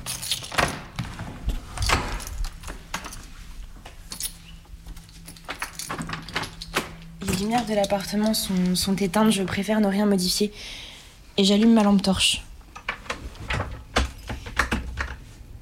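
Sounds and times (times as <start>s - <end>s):
keys jangling: 0.0s - 1.0s, 1.7s - 3.3s, 4.0s - 8.8s
apartment door being unlocked and pushed open: 0.0s - 9.4s, 12.7s - 15.2s
speech: 7.4s - 10.8s, 11.4s - 12.4s.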